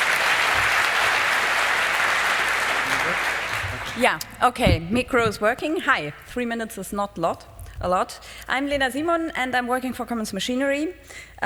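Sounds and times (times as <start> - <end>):
audience applause from a large crowd at an event: 0.0 - 4.2
speech: 4.0 - 11.4.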